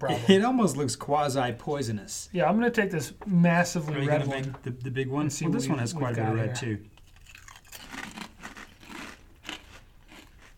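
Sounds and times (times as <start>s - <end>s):
speech: 0.0s - 6.9s
crunching kettle-cooked potato chips: 7.0s - 10.5s.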